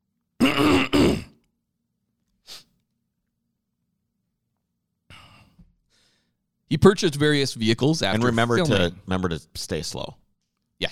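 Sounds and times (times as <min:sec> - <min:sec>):
person clearing throat forcefully: 0:00.4 - 0:01.4
faint breath: 0:05.1 - 0:06.4
speech: 0:06.7 - 0:10.2.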